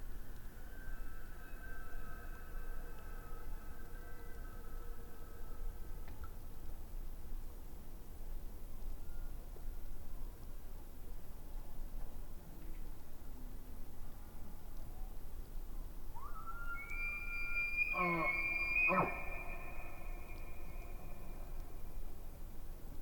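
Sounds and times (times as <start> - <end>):
low continuous background noise: 0.0 - 23.0
elk bugling: 16.2 - 21.5.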